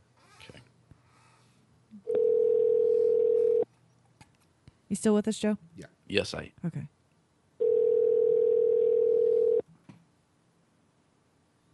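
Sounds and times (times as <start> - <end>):
Skype call electronic dialing tone: 2.1 - 3.6, 7.6 - 9.6
speech: 4.9 - 7.0.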